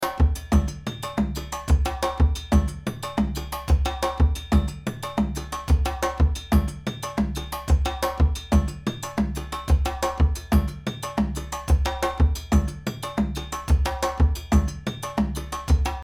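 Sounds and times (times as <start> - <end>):
drum ensemble loop: 0.0 - 16.0.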